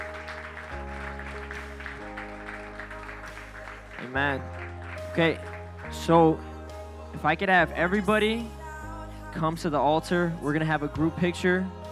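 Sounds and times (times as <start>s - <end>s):
crowd clapping hands: 0.0s - 6.4s
sustained organ or keyboard chords: 0.0s - 11.9s
speech: 4.0s - 6.5s, 7.1s - 8.6s, 9.3s - 11.8s.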